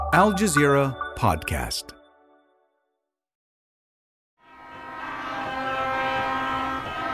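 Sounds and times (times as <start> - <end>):
speech: 0.2 - 2.0
demonstrators blowing horns and whistles outside a French military base in Niger: 4.4 - 7.1.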